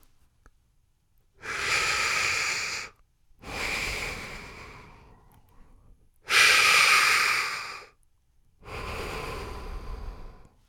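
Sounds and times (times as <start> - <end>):
rasping hollow breaths through hands cupped over nose and mouth: 1.4 - 8.0, 8.6 - 10.6.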